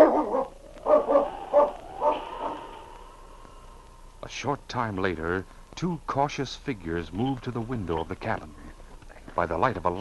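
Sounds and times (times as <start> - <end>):
dog barking in short sharp yelps: 0.0 - 2.6
speech: 4.3 - 8.6, 9.4 - 9.9.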